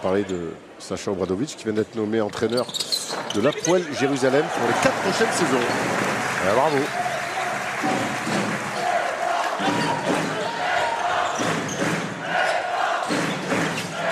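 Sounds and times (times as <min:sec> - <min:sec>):
speech: 0:00.0 - 0:07.1, 0:07.8 - 0:08.4
basketball arena crowd cheering and urging on the home team: 0:03.8 - 0:14.0.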